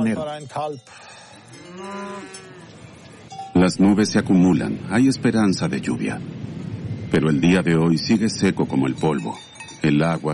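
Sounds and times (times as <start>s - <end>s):
speech: 0.0s - 2.4s, 3.5s - 10.3s
faint outdoor background on a dry alpine pasture: 0.0s - 10.3s
nursing cow mooing on a dry alpine pasture: 1.4s - 3.2s.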